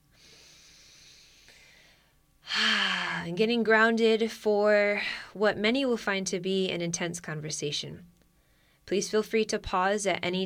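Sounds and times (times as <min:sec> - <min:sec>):
deep breath drawn as a grounding exercise: 0:00.1 - 0:03.2, 0:08.4 - 0:08.8
speech: 0:03.3 - 0:08.1, 0:08.9 - 0:10.4.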